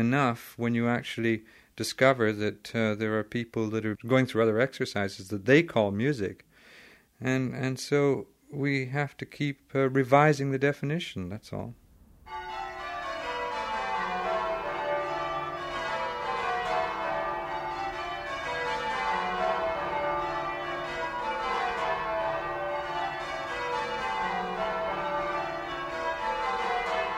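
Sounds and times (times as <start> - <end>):
speech: 0.0 - 6.5, 7.2 - 12.4
English change ringing church tower bells: 12.3 - 27.1.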